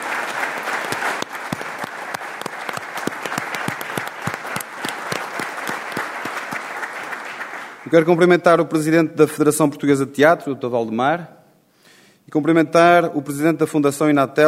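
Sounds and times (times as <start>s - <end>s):
audience applause: 0.0s - 8.1s
speech: 7.9s - 11.4s, 12.3s - 14.4s.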